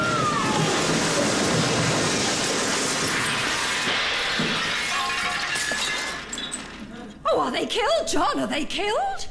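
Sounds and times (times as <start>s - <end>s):
clattering debris: 0.1s - 7.0s
crash of shattering glass: 0.8s - 6.9s
speech: 7.7s - 9.2s.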